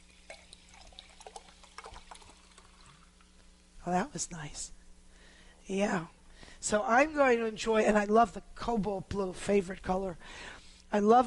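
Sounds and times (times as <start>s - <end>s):
sparkling spring water pouring from a glass bottle into a glass: 0.0s - 3.6s
low steady hum: 0.0s - 11.2s
speech: 3.9s - 4.8s, 5.7s - 11.2s.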